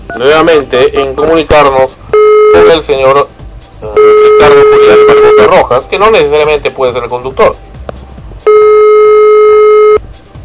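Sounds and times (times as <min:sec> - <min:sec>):
speech: 0:00.1 - 0:02.0, 0:02.6 - 0:07.6
telephone line ringing tone of an unanswered call: 0:02.2 - 0:02.8, 0:04.0 - 0:05.6, 0:08.5 - 0:10.0.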